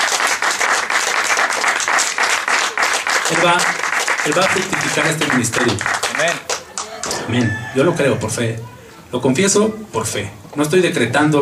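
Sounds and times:
church congregation applauding: 0.0s - 7.6s
speech: 3.4s - 6.5s, 7.3s - 11.4s.

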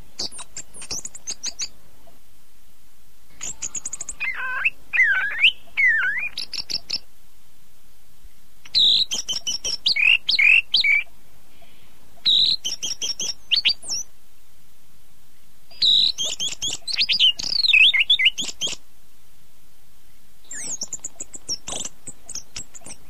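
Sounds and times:
bird song with whistles, chattering trills and chirps: 0.0s - 2.2s, 3.3s - 7.1s, 8.3s - 14.1s, 15.4s - 18.8s, 20.0s - 23.0s.

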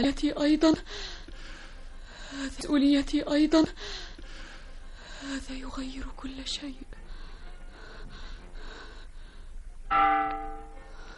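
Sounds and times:
speech: 0.0s - 1.2s, 2.3s - 4.1s, 5.2s - 7.0s, 9.9s - 10.7s
church bell clanging: 9.9s - 11.0s.

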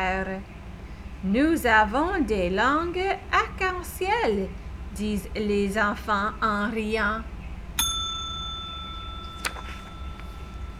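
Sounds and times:
speech: 0.0s - 0.6s, 1.2s - 7.3s
telephone bell ringing: 7.8s - 10.7s.

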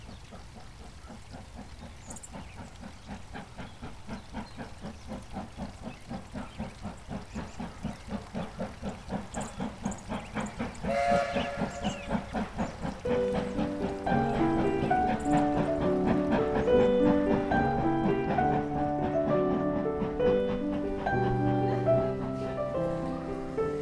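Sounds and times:
old steam locomotive chuffing at a platform: 0.0s - 23.8s
steam locomotive whistle: 10.9s - 12.1s.

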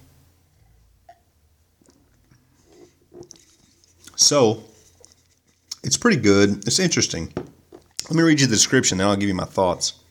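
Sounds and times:
sipping and swallowing New England style IPA beer: 1.1s - 5.9s
speech: 4.2s - 4.7s, 5.8s - 7.4s, 8.1s - 10.0s.

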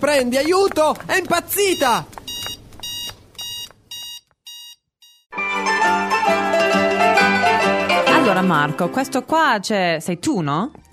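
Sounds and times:
speech: 0.0s - 2.2s, 8.3s - 10.8s
shop security alarm beeping: 1.6s - 5.3s
loud music: 5.3s - 9.2s.

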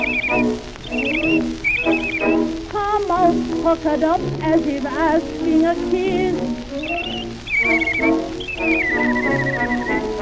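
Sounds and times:
girl whistling a short gliding tune: 0.0s - 2.4s, 6.9s - 10.0s
low humming musical backing: 0.0s - 10.2s
speech: 3.6s - 6.6s, 7.7s - 9.7s.

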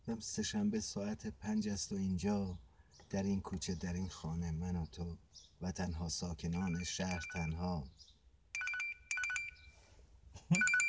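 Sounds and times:
speech: 0.1s - 8.1s
electronic telephone ringtone with warbling high tones: 6.6s - 7.6s, 8.6s - 9.7s, 10.5s - 10.8s.

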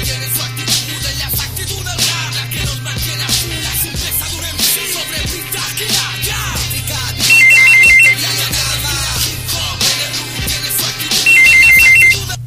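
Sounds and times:
telephone with a warbling electronic ring: 7.3s - 8.2s, 11.3s - 12.2s.

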